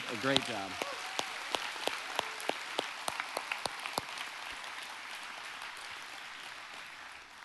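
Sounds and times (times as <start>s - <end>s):
audience applauding a panel: 0.0s - 7.4s
speech: 0.1s - 0.9s.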